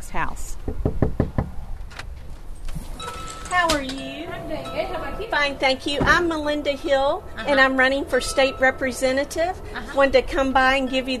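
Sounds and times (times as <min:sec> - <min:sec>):
knocking on a house door: 0:00.6 - 0:01.6
speech: 0:05.3 - 0:11.1.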